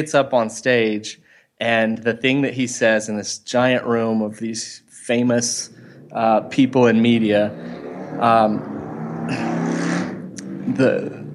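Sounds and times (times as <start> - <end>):
speech: 0.0 - 8.7, 9.3 - 9.6, 10.7 - 11.2
motorcycle passing by: 5.1 - 11.3.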